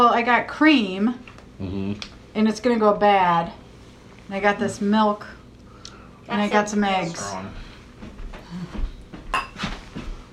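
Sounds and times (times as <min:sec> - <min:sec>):
speech: 0:00.2 - 0:03.6, 0:04.3 - 0:05.4, 0:06.3 - 0:07.6
two glasses clinking together in a toast: 0:09.3 - 0:09.6
soft clattering of dishes: 0:09.3 - 0:09.8.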